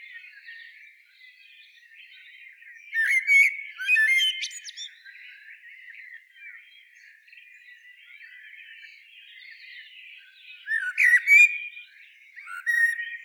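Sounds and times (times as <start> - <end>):
quiet continuous bird chatter: 0.0 - 13.2
common blackbird giving harsh squawky calls: 3.0 - 5.0, 12.4 - 13.2.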